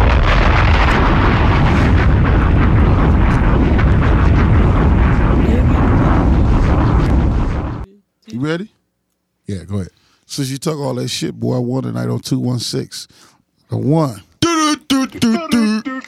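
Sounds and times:
bombs exploding: 0.0s - 7.9s
speech: 9.5s - 14.3s, 14.9s - 16.0s.

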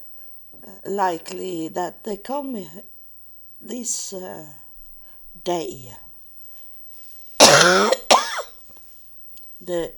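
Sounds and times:
speech: 0.9s - 2.9s, 3.6s - 4.6s, 5.4s - 6.0s, 9.6s - 9.9s
person coughing: 7.4s - 8.5s.

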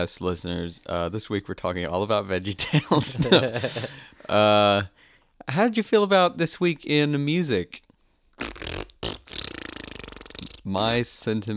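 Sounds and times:
speech: 0.0s - 7.9s, 10.6s - 11.5s
laughter: 2.6s - 4.5s
cartoonish fart sound effect: 8.4s - 11.0s.

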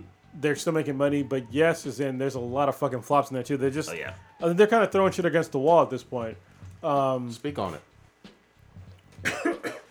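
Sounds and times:
speech: 0.4s - 7.9s
rough throaty coughing: 9.2s - 9.9s.

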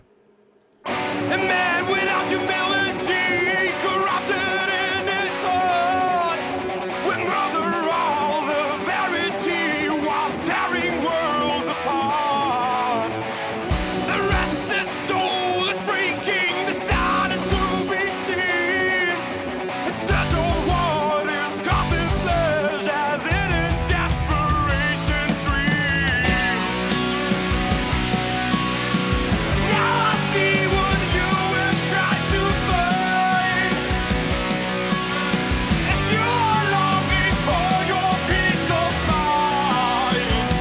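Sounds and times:
distorted heavy metal guitars: 0.0s - 40.5s
yelled heavy metal vocals: 0.9s - 40.5s
pounding heavy metal drums: 23.3s - 40.5s.

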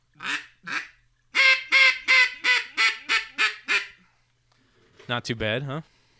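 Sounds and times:
hen mallard duck call being blown: 0.2s - 4.0s
speech: 5.1s - 6.1s.

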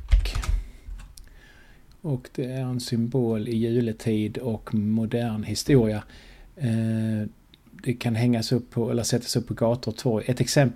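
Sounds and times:
computer keyboard typing: 0.0s - 1.1s
speech: 2.0s - 10.7s.

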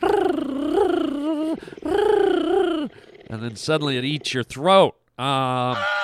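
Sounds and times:
cheetah's high-pitched buzzy purr: 0.0s - 4.8s
speech: 3.4s - 6.0s.

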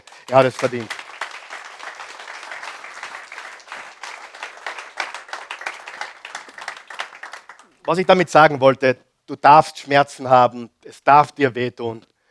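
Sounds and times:
audience applauding: 0.0s - 8.2s
speech: 0.3s - 1.0s, 7.9s - 12.1s.

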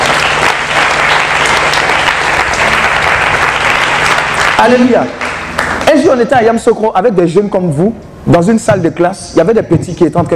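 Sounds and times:
religious gathering applauding during a sermon: 0.0s - 6.2s
speech: 4.6s - 5.2s, 5.9s - 10.3s.

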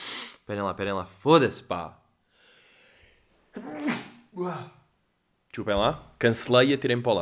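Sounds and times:
speech: 0.5s - 2.0s, 3.6s - 4.8s, 5.6s - 7.2s
person sneezing: 3.5s - 4.8s.

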